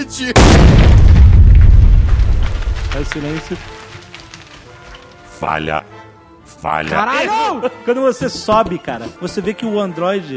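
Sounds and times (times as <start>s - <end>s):
speech: 0.0s - 1.1s, 2.9s - 3.8s, 5.4s - 5.9s, 6.6s - 10.3s
grenade explosion in a video game: 0.4s - 3.2s.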